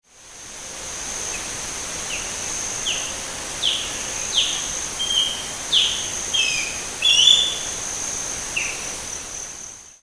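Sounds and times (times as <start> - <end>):
Western Osprey Pandion haliaetus: 2.8 - 7.8.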